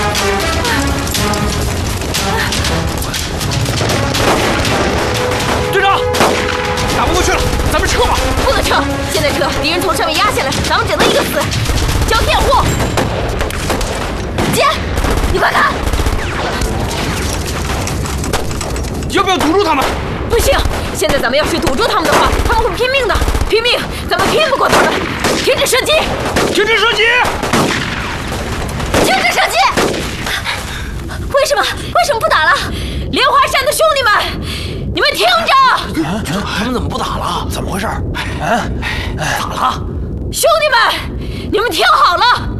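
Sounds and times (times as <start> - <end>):
gunfire in a battle: 0.0 - 30.5
speech: 21.2 - 22.1, 22.8 - 27.5, 31.5 - 34.4, 35.0 - 42.5.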